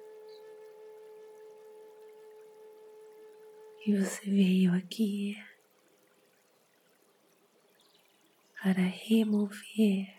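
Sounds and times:
faint sustained hum-like tone: 0.0 - 10.1
gently flowing water trickling: 0.0 - 10.1
speech: 3.8 - 5.5, 8.6 - 10.1.

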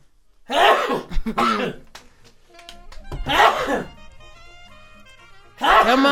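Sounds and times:
sneezing: 0.5 - 1.9, 3.3 - 4.0, 5.6 - 6.0
coughing: 0.5 - 4.1, 5.0 - 6.0
speech: 1.3 - 1.9, 5.8 - 6.0.

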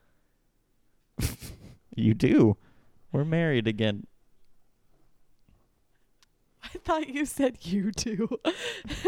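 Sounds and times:
person sneezing: 1.2 - 1.8
speech: 2.0 - 4.1, 6.8 - 9.0.

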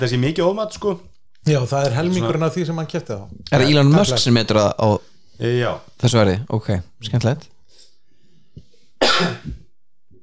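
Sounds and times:
speech: 0.0 - 7.5, 9.2 - 9.6
person with a lingering cough coughing: 9.0 - 9.7.

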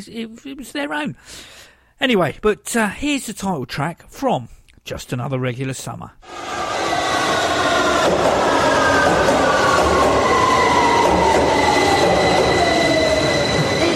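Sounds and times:
speech: 0.0 - 6.6, 8.1 - 8.6
London Underground District Line train rumbling: 6.3 - 13.9
faint metallic squeal of train on the track: 6.3 - 13.9.

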